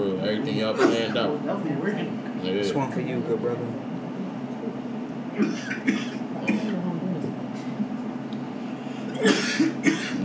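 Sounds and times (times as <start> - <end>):
speech: 0.0 - 3.9, 5.4 - 6.6
steady noisy background: 0.0 - 10.2
person coughing: 5.4 - 6.8, 9.1 - 10.2.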